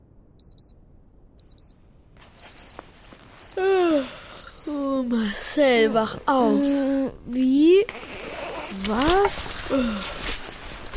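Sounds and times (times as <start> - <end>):
alarm clock beeping in short double bursts: 0.4 - 0.7, 1.4 - 1.8, 2.4 - 2.8, 4.4 - 10.9
rustling: 2.1 - 3.8, 7.8 - 10.9
speech: 4.7 - 10.2.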